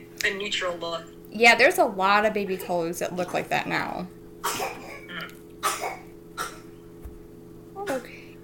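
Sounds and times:
speech: 0:00.3 - 0:04.7
small child giving breathy fake coughs: 0:04.4 - 0:06.7, 0:07.8 - 0:08.1.

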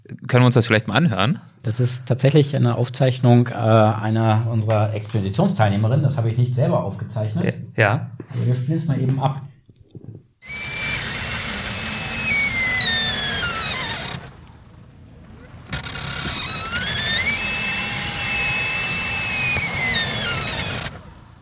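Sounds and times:
speech: 0:00.3 - 0:09.5
high squealing creaks of shifting ice: 0:04.1 - 0:05.8, 0:09.7 - 0:21.2
deep rumbling groan of ice: 0:10.0 - 0:21.4.

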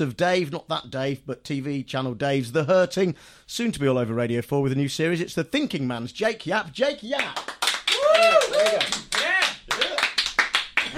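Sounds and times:
speech: 0:00.0 - 0:07.5
sparse clapping from a small audience: 0:07.2 - 0:10.9
people whooping: 0:07.9 - 0:10.2.

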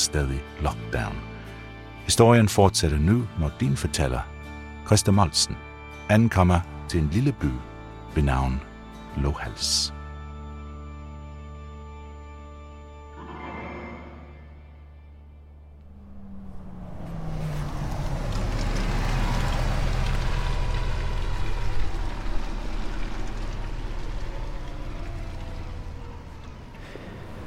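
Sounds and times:
speech: 0:00.1 - 0:01.3, 0:02.1 - 0:04.3, 0:04.9 - 0:10.0
bus engine idling, revving as it turns and pulls away at harbour: 0:15.6 - 0:27.4.

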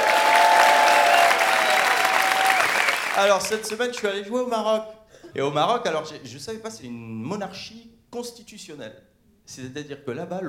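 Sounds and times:
large audience clapping and cheering: 0:00.0 - 0:04.0
speech: 0:03.2 - 0:10.4.

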